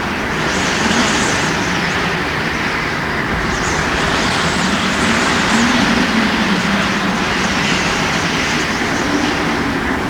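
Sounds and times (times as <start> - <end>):
whistling wind: 0.0 - 10.0.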